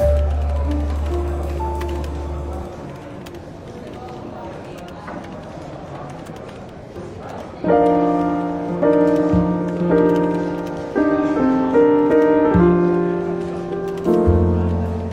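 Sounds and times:
soft jazz with bass line and mellow chords in a bookshop café: 0.0s - 2.8s, 7.7s - 15.1s
faint chatter of people in a bookshop café: 0.0s - 15.1s.

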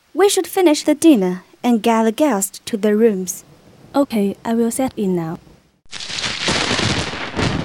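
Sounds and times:
speech: 0.2s - 5.5s
thunder crack and rumble: 5.4s - 7.6s.

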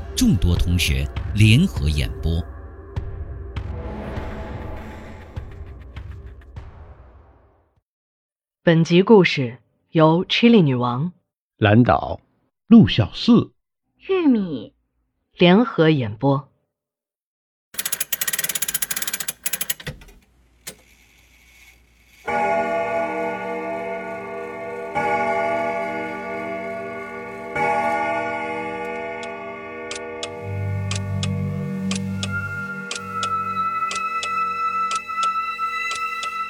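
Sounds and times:
speech: 0.2s - 2.5s, 8.7s - 14.7s, 15.4s - 16.5s
old quartz clock ticking: 17.8s - 20.1s, 29.2s - 36.4s
old quartz clock striking: 17.8s - 36.4s.

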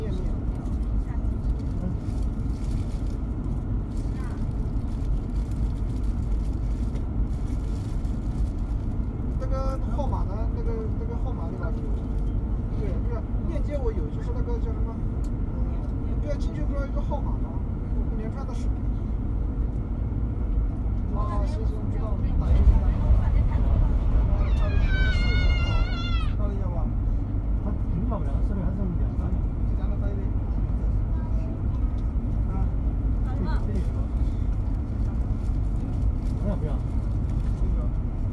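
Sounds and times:
old moving train rumbling: 0.0s - 38.3s.

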